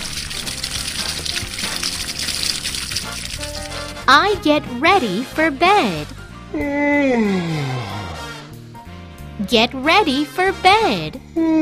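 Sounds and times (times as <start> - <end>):
water trickling and splashing: 0.0 - 4.1
speech: 4.1 - 8.0, 9.5 - 11.5.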